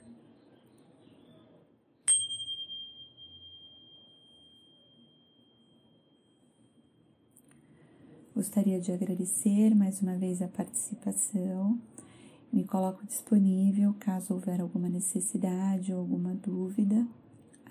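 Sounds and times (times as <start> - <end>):
bell struck to end meditation: 2.1 - 6.9
speech: 8.4 - 17.2.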